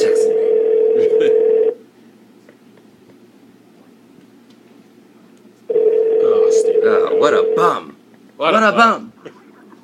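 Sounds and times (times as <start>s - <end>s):
telephone ringback tone: 0.2s - 1.8s, 5.7s - 7.8s
speech: 8.5s - 9.0s.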